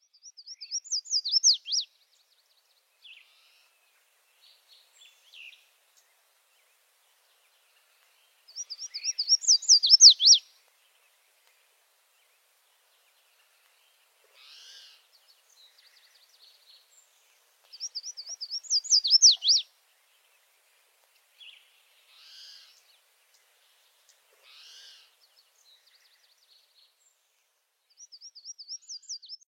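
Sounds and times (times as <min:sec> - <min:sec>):
red-faced warbler singing: 0:00.0 - 0:11.4, 0:12.1 - 0:20.5, 0:21.4 - 0:29.4.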